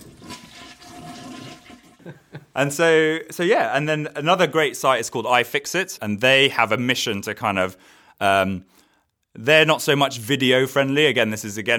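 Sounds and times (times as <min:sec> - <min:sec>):
toilet flushing with its tank lid removed: 0:00.0 - 0:02.2
speech: 0:02.0 - 0:08.7, 0:09.4 - 0:11.7.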